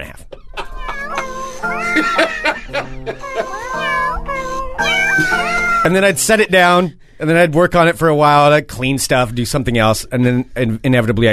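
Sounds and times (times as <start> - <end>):
laughter: 0.4 - 3.8
person imitating cat meows: 0.6 - 2.4, 3.2 - 5.9
speech: 1.6 - 3.9, 5.8 - 11.3.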